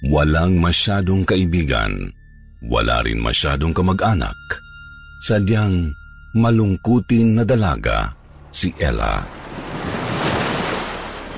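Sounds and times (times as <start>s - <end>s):
speech: 0.0s - 4.6s, 5.2s - 9.4s
ocean surf washing against a beach of dirty water and sharp rocks: 9.3s - 11.3s.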